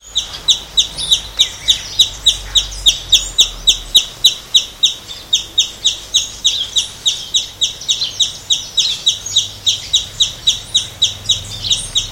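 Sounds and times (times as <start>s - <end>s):
Aphantochroa cirrochloris calling: 0.0s - 12.0s.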